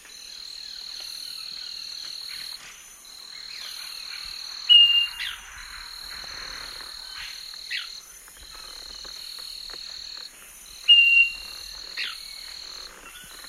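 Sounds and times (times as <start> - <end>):
droning insect chorus in the Eastern Lowlands of South America: 0.0 - 13.4
Southern nightingale-wren giving clear whistled notes: 4.7 - 5.4, 10.9 - 11.5.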